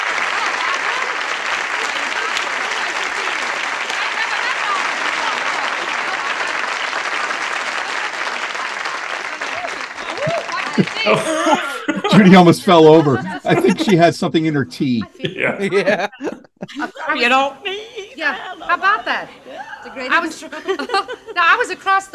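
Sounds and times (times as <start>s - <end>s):
faint voices and whoops: 0.0s - 14.3s, 15.0s - 20.2s
dense applause from a large audience: 0.0s - 15.0s
laughter: 0.0s - 22.1s
speech: 10.8s - 19.4s, 20.0s - 22.1s.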